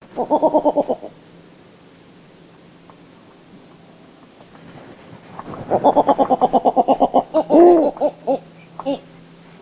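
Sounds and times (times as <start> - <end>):
Snowy Owl Bubo scandiacus calling: 0.0 - 1.2, 5.7 - 9.2.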